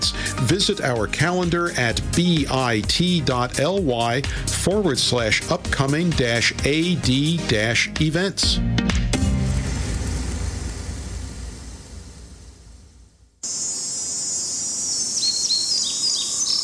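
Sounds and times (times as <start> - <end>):
speech: 0.4 - 9.0
low humming tonal passage: 9.2 - 13.4
cicada buzzing at dusk: 13.4 - 16.6
faint chirps: 13.4 - 16.6.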